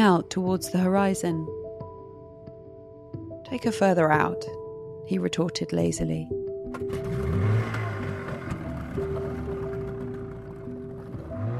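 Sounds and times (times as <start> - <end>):
speech: 0.0 - 1.6, 3.5 - 7.0
fishing boat motor droning off Devon in the south of England: 6.7 - 11.5.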